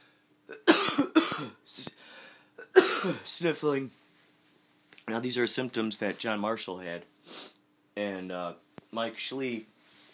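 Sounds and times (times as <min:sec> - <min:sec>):
person with cold symptoms coughing: 0:00.5 - 0:01.8, 0:02.6 - 0:03.3
faint trailing breath: 0:02.0 - 0:02.6
speech: 0:03.0 - 0:04.0, 0:05.1 - 0:09.7.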